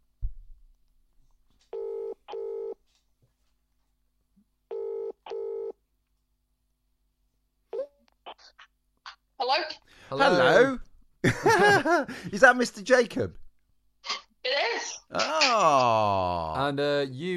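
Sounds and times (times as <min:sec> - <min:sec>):
telephone ringback tones through the earpiece: 0:01.8 - 0:02.8, 0:04.7 - 0:05.8
speech: 0:09.5 - 0:13.4, 0:15.1 - 0:17.3
laughter: 0:11.2 - 0:12.4.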